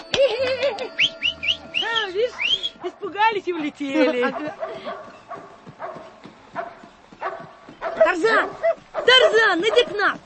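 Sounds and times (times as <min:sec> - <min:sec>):
crossbill wavering whistled note: 0:00.9 - 0:02.8
speech: 0:03.2 - 0:05.5, 0:08.1 - 0:10.2.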